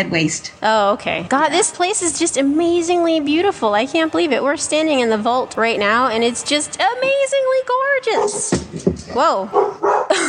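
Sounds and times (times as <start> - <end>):
speech: 0.0 - 10.2
six-month-old pit bull puppy barking: 8.2 - 8.5, 9.5 - 10.2.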